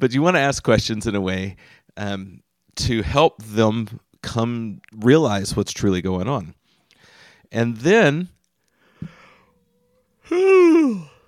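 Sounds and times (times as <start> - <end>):
speech: 0.0 - 6.6, 7.5 - 8.4, 10.3 - 11.1
tired adult yawning: 10.2 - 11.2.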